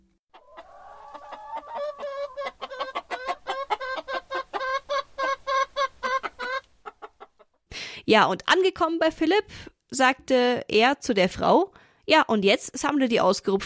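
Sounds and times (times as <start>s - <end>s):
chicken clucking: 0.3s - 7.6s
speech: 8.1s - 13.6s.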